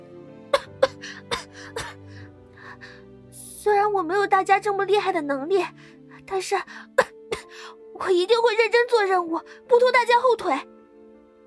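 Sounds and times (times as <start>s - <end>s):
person coughing after gulping down overly salty soup: 0.5s - 2.0s, 7.0s - 7.5s
speech: 3.9s - 6.9s, 8.0s - 10.7s.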